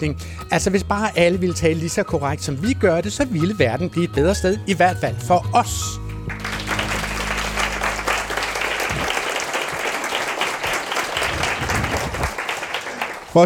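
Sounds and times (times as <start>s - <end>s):
speech: 0.0s - 6.1s
live audience applauding at a language festival: 6.0s - 13.4s.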